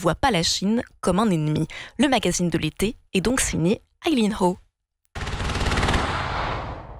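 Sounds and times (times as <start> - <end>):
speech: 0.0 - 4.6
heavy rapid artillery gunfire during military exercise: 5.2 - 6.9.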